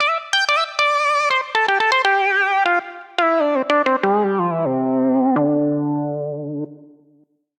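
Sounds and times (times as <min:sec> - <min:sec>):
multi-instrument solo music loop in D minor: 0:00.0 - 0:07.0.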